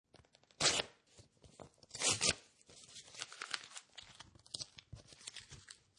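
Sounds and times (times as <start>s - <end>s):
paper envelope ripping and tearing: 0.6s - 1.0s, 1.9s - 5.9s.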